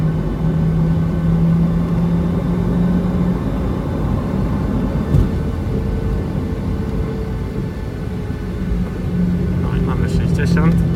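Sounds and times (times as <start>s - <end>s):
airplane taxiing toward the runway before takeoff, low engine rumble: 0.0s - 10.9s
brief knock: 5.1s - 5.4s.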